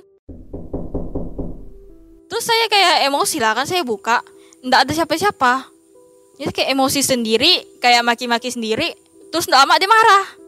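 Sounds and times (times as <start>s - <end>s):
firm knocking on the door of a zinc-sheet toilet: 0.3s - 2.2s
speech: 2.4s - 5.7s, 6.4s - 10.4s.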